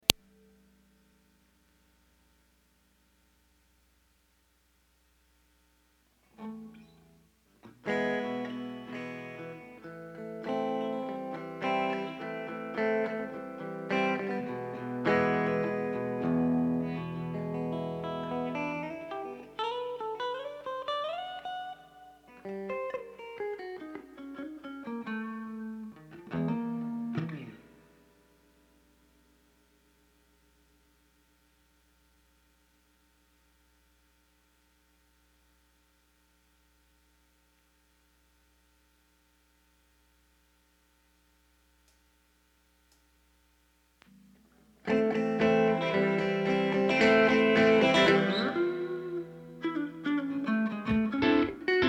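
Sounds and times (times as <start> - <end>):
ambient guitar mix: 6.3 - 28.8, 44.1 - 51.8.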